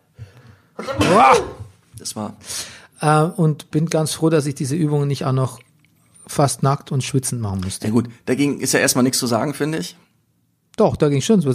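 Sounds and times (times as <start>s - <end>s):
single loud sneeze: 0.8s - 1.7s
speech: 0.8s - 5.6s, 6.3s - 10.0s, 10.8s - 11.5s.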